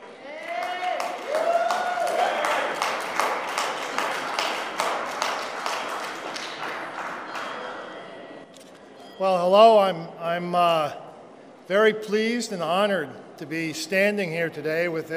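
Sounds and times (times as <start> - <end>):
audience applause: 0.0 - 7.9
person whooping: 0.2 - 2.7
speech: 9.2 - 11.0, 11.7 - 15.1.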